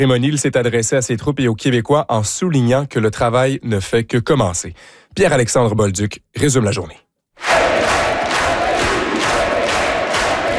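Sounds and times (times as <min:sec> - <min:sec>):
speech: 0:00.0 - 0:07.0
packed room of people cheering and applauding: 0:07.4 - 0:10.5.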